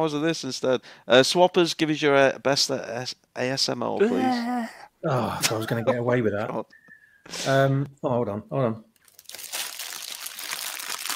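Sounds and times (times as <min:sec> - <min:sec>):
speech: 0:00.0 - 0:08.9
thin plastic crisp packet crinkling as it is opened: 0:09.0 - 0:11.1.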